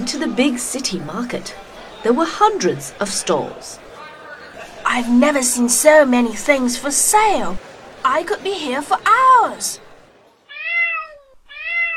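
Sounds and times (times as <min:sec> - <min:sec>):
speech: 0:00.1 - 0:03.8, 0:04.9 - 0:09.8
laughter: 0:04.2 - 0:05.4
cat meowing: 0:10.5 - 0:11.9.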